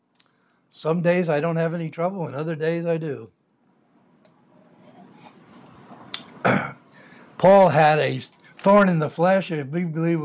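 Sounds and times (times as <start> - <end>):
speech: 0.7 - 3.4, 7.4 - 10.2
faint throat sound: 6.2 - 7.0
person with a troubled throat coughing: 6.4 - 6.8.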